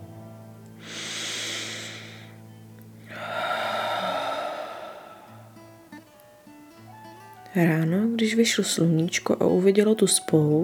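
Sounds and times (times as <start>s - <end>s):
deep breath in through the nose: 0.8s - 2.4s, 3.1s - 5.7s
speech: 7.6s - 10.6s.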